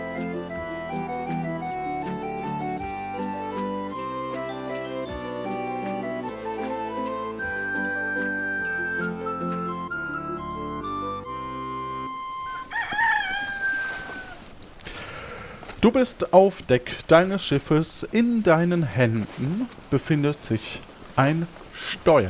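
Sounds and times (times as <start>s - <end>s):
bright music with jingling chimes: 1.6s - 12.2s
rooster crowing loudly: 12.3s - 14.5s
speech: 15.8s - 22.2s.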